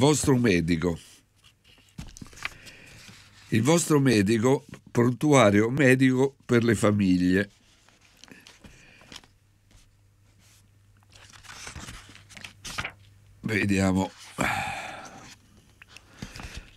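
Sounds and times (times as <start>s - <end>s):
speech: 0.0s - 1.1s, 3.5s - 7.6s, 13.5s - 14.7s
pages of a medical handbook being flipped: 1.4s - 3.6s, 7.6s - 13.2s, 15.2s - 16.7s.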